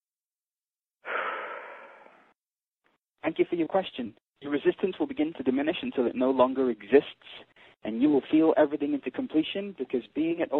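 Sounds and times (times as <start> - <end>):
deep breath drawn in: 1.0 - 2.4
speech: 3.2 - 10.5.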